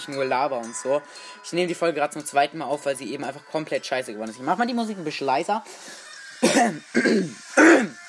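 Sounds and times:
speech: 0.0s - 8.0s
harsh throaty coughs: 6.4s - 8.0s.

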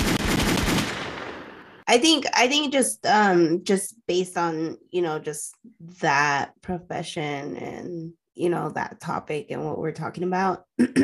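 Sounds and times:
rapid gunshot sound effects: 0.0s - 1.8s
speech: 1.9s - 11.0s.

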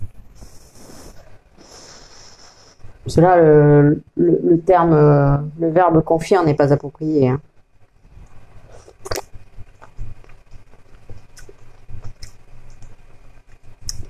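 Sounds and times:
speech: 3.1s - 7.5s
chewing a piece of cooked endive: 8.2s - 14.0s
wet mouth sounds: 8.3s - 14.0s.

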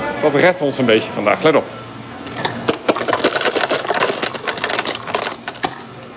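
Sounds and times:
speech: 0.2s - 1.8s
ice dispenser dropping ice cubes for a drink: 2.4s - 5.8s.

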